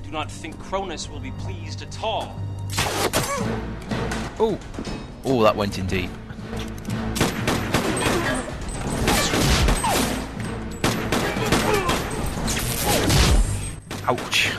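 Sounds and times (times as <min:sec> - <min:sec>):
dense continuous backdrop of video game action: 0:00.0 - 0:14.5
speech: 0:00.1 - 0:07.0, 0:14.1 - 0:14.5
gunfire from two pistols in a video game: 0:02.7 - 0:03.4, 0:07.1 - 0:10.2, 0:10.8 - 0:14.5.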